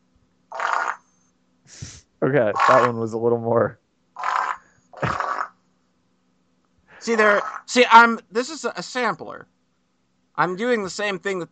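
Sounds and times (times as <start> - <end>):
faint low hum: 0.0 - 11.5
speech: 1.7 - 3.8, 7.1 - 9.5, 10.4 - 11.5
tiny fart: 5.0 - 5.5.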